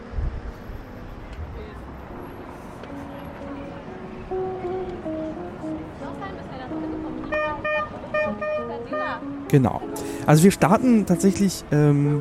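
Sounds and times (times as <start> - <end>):
murmur of crowd chatter: 0.0 - 12.1
steady rumble of city street traffic near a train station: 0.0 - 12.1
car horns tooting and honking: 7.2 - 9.5
speech: 9.5 - 12.1.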